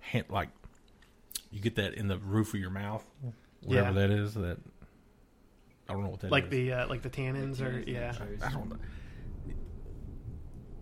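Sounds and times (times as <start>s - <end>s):
speech: 0.1s - 0.6s, 1.5s - 4.8s, 5.9s - 9.0s
low continuous thunder rumbling outside: 8.3s - 10.8s.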